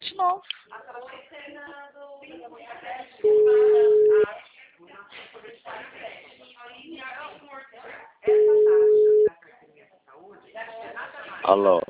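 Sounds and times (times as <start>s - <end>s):
people talking: 0.0s - 11.8s
telephone tone beeps after a dropped call: 3.2s - 4.2s, 8.3s - 9.3s.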